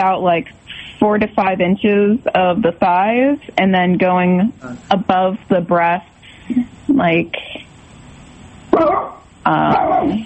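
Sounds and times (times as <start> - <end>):
speech: 0.0 - 7.6, 8.8 - 10.2
pet dog barking: 8.7 - 10.2.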